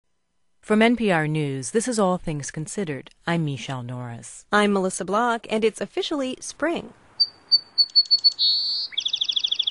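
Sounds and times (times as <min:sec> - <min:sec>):
speech: 0:00.7 - 0:07.7
bird singing in spring: 0:07.2 - 0:09.6.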